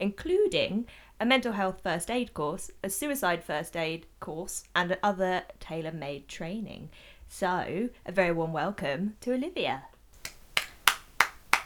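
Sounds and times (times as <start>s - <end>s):
speech: 0.0s - 9.9s
hand claps: 10.2s - 11.6s.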